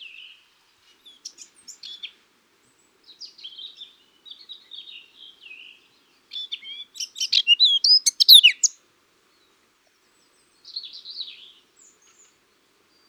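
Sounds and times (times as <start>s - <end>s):
Eurasian blackcap song: 6.5s - 8.8s.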